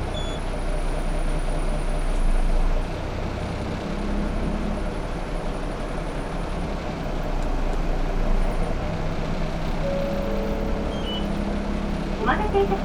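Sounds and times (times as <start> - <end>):
city bus engine rumble and road noise heard from inside the moving bus: 0.0 - 12.8
brief tonal beeps inside a city bus: 9.8 - 11.5.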